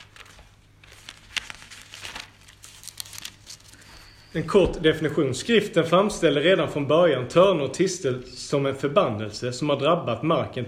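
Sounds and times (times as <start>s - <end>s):
pages of a reference book being leafed through: 0.0s - 4.1s
speech: 4.4s - 10.6s.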